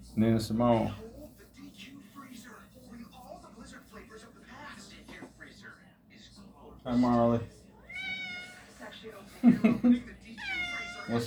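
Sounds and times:
speech: 0:00.2 - 0:01.1, 0:06.8 - 0:07.6, 0:11.1 - 0:11.2
cat meowing: 0:07.9 - 0:08.8, 0:10.4 - 0:11.2
laughter: 0:09.3 - 0:10.2.

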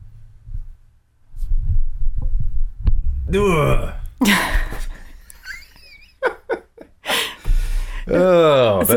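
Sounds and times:
microphone handling noise as the mic is moved closer to a person: 0:00.4 - 0:04.9
speech: 0:03.3 - 0:04.6, 0:08.1 - 0:08.9.

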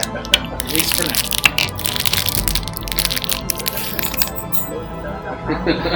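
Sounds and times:
crinkling packaging of a new pack of small dice: 0:00.0 - 0:04.7
small plastic dice tumbling together: 0:00.0 - 0:04.7
speech: 0:00.8 - 0:01.4, 0:05.5 - 0:05.9
laughter: 0:05.4 - 0:05.9.

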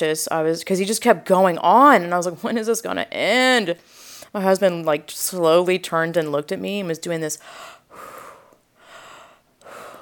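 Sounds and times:
speech: 0:00.0 - 0:08.1
person taking slow deep breaths in a breathing exercise: 0:07.4 - 0:10.0.

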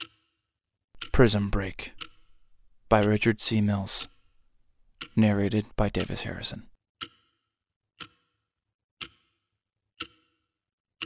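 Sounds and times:
wall clock ticking: 0:01.0 - 0:07.2, 0:08.0 - 0:08.3, 0:09.0 - 0:09.3, 0:10.0 - 0:10.3
speech: 0:01.2 - 0:02.0, 0:02.9 - 0:04.1, 0:05.1 - 0:07.1.

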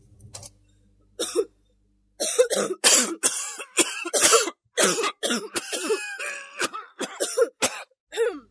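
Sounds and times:
person coughing from acrid smoke of burning plastic: 0:01.2 - 0:01.5, 0:02.2 - 0:08.4.

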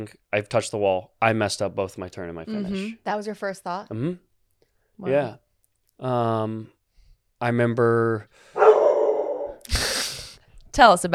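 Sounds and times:
speech: 0:00.0 - 0:04.3, 0:05.0 - 0:05.4, 0:06.0 - 0:06.8, 0:07.4 - 0:08.6, 0:10.8 - 0:11.1
dog barking: 0:08.6 - 0:09.6.

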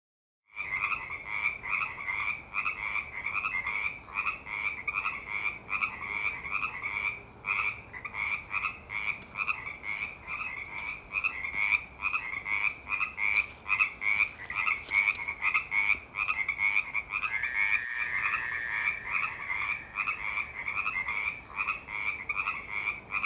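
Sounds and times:
frogs croaking in chorus: 0:00.5 - 0:23.2.

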